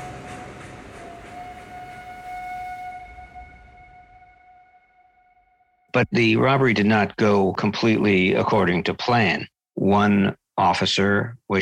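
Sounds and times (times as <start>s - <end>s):
train whistle echoing: 0.0s - 5.6s
speech: 6.0s - 11.5s.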